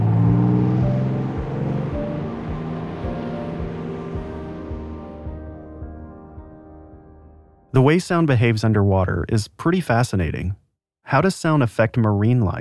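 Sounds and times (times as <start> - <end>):
ship motors heard underwater, cruise liner or trawler: 0.0 - 6.3
speech: 7.8 - 12.6.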